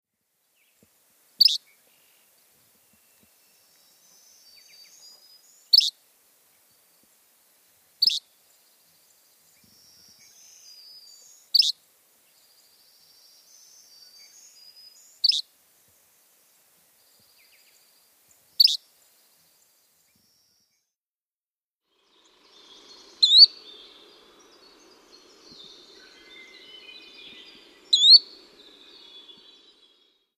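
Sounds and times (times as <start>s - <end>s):
Yellow-bellied Flycatcher calling: 1.4s - 2.1s, 3.2s - 6.0s, 8.0s - 8.4s, 9.1s - 11.8s, 14.0s - 15.5s, 18.6s - 18.8s, 22.1s - 30.0s.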